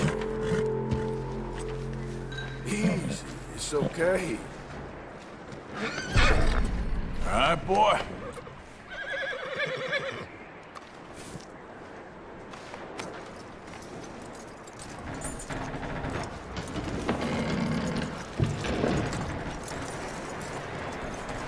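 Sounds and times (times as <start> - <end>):
horse restless stamping: 0.0 - 6.8, 12.4 - 21.4
speech: 3.1 - 4.6, 7.3 - 8.2
horse whinnying and neighing: 5.7 - 6.6, 8.2 - 10.3.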